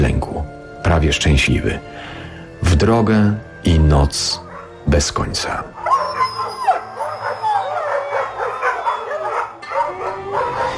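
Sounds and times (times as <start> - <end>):
speech: 1.0 - 2.0, 2.6 - 5.7
dogs at a colony and village dogs howling at night: 4.3 - 4.9, 5.5 - 10.7
dogs whimpering yips: 5.8 - 10.7.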